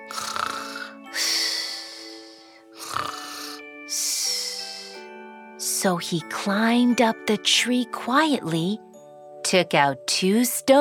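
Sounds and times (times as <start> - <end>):
loud rumbling snoring: 0.0 - 2.0, 2.8 - 3.6
speech: 5.8 - 8.9, 9.5 - 10.7.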